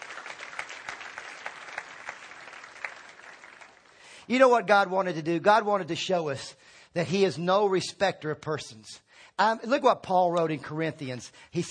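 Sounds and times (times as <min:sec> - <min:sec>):
crowd applauding: 0:00.0 - 0:04.2
speech: 0:04.3 - 0:11.6.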